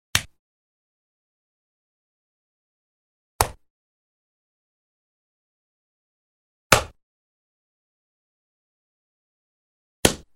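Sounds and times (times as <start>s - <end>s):
finger flicking a wooden board: 0.1s - 0.4s, 3.4s - 3.7s, 6.7s - 7.0s, 10.0s - 10.3s.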